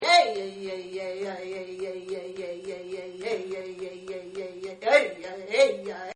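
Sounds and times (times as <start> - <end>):
voice chanting: 0.0 - 6.1.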